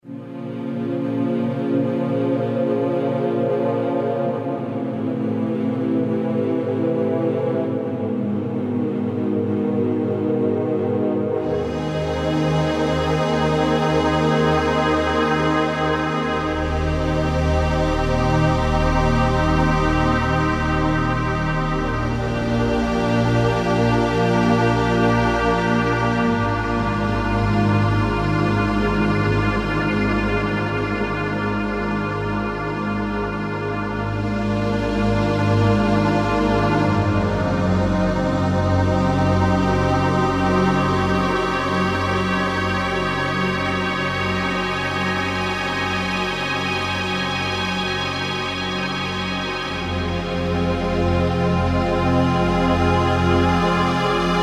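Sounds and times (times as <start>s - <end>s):
Kurzweil K2000 synth pad: 0.1s - 54.4s.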